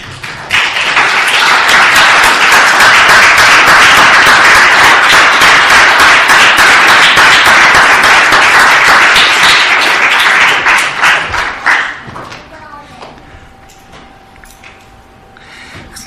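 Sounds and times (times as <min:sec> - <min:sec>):
large church audience applauding: 0:00.0 - 0:12.1.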